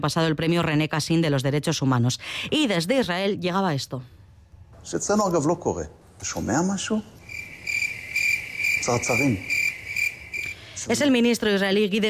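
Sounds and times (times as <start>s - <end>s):
speech: 0.0s - 4.2s, 4.8s - 7.2s, 8.8s - 9.6s, 10.8s - 12.0s
crickets chirping in a high-pitched trill: 6.7s - 11.6s.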